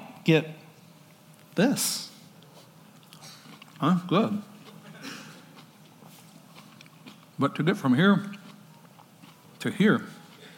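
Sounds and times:
low hum: 0.0 - 10.5
speech: 0.2 - 0.6, 1.6 - 2.1, 3.8 - 4.5, 7.4 - 8.4, 9.6 - 10.2
chewing with moist mouth noises: 2.4 - 3.9, 4.5 - 7.4, 8.2 - 10.5.

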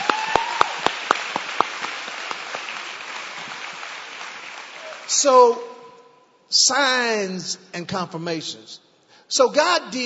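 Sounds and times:
small group clapping: 0.0 - 5.4
speech: 5.2 - 5.7, 6.5 - 10.0.

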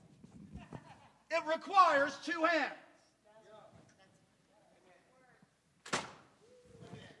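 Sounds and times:
speech: 1.4 - 2.8
door with sprung hinge pulled shut with a sharp thud: 5.8 - 6.3.

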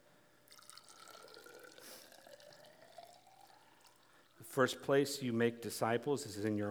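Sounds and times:
water pouring into a container and filling toward the brim: 0.4 - 4.5
speech: 4.5 - 6.6.

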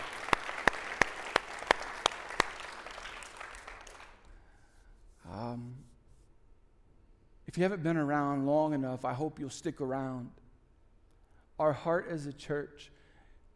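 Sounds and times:
audience applauding: 0.0 - 4.3
loud claps: 0.0 - 4.4
speech: 7.6 - 10.4, 11.6 - 13.0.

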